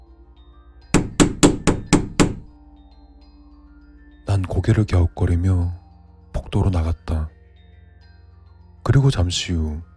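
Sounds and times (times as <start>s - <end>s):
loud rapid knocks on a door: 1.0s - 2.5s
speech: 4.6s - 5.8s, 6.5s - 7.4s, 8.8s - 9.9s.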